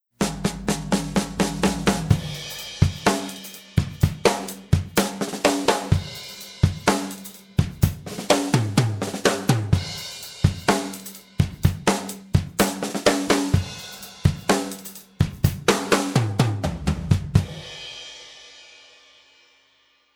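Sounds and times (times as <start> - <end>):
compressed kick drum: 0.2 - 5.2, 5.8 - 9.0, 9.6 - 12.9, 13.5 - 15.8
snare drum: 0.2 - 17.6.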